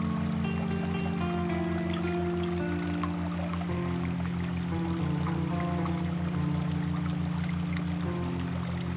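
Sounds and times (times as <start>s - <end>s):
low humming drone: 0.0s - 8.9s
water flowing and pouring: 0.0s - 8.9s.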